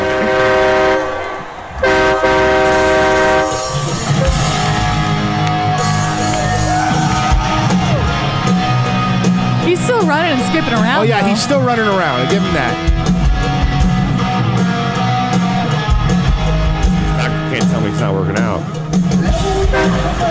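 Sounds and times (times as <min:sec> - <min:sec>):
crowd shouts at a concert: 0:00.0 - 0:12.3, 0:19.2 - 0:20.2
distorted live rock music at a concert in Orlando: 0:02.1 - 0:20.2
speech: 0:10.6 - 0:12.9, 0:17.8 - 0:18.8.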